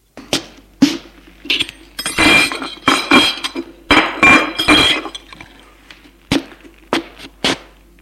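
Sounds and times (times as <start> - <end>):
dishes and glassware clinking as a man clears the table after dinner: 1.4 - 5.6
crockery stacking: 1.5 - 5.6.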